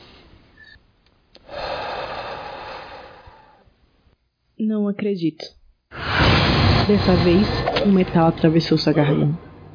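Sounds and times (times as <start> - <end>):
deep breath of relief: 1.4 - 3.7
speech: 4.6 - 5.6, 6.9 - 9.4.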